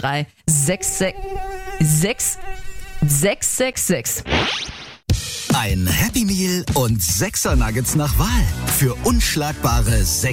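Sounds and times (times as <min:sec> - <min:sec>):
speech: 0:00.0 - 0:04.7, 0:05.6 - 0:10.3
mosquito buzzing whine: 0:00.5 - 0:03.5.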